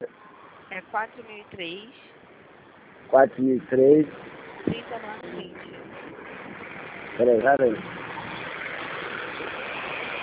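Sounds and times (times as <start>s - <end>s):
traffic roar from many cars passing on a street: 0.0s - 10.2s
speech: 0.9s - 2.2s, 3.1s - 4.3s, 7.2s - 8.0s.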